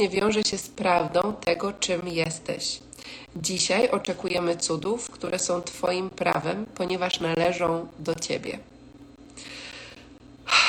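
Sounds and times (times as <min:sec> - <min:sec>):
speech: 0:00.0 - 0:08.7
deep breath inhale: 0:09.4 - 0:10.6.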